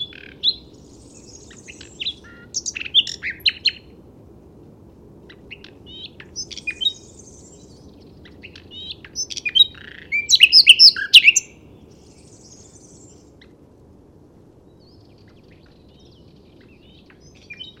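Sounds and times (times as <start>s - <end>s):
common nightingale singing chirps, trills and whistles: 0.0s - 3.9s, 5.3s - 13.3s, 14.7s - 17.7s.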